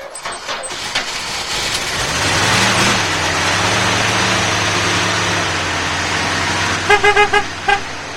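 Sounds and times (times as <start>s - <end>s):
old telephone company van engine cranking and idling: 0.0s - 8.1s
van horn toots: 6.7s - 8.0s.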